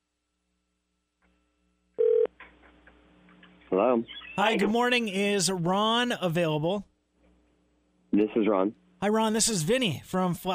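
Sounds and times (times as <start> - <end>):
telephone ringback tone heard through the line: 2.0 - 2.3
speech: 3.7 - 6.9, 8.2 - 10.5.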